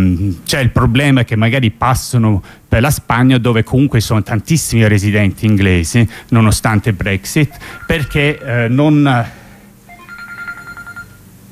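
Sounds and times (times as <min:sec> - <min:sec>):
speech: 0:00.0 - 0:09.4
low hum: 0:00.0 - 0:11.5
telephone ringing in a warbling electronic trill: 0:07.5 - 0:08.8, 0:09.9 - 0:11.4.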